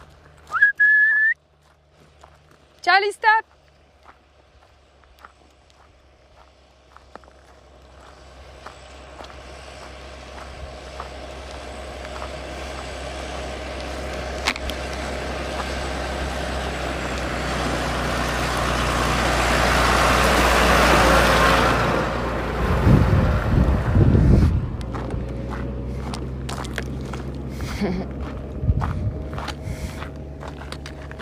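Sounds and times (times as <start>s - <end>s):
footsteps: 0.0s - 16.1s, 24.0s - 31.1s
big tractor engine rumbling: 0.0s - 31.1s
speech: 2.8s - 3.6s.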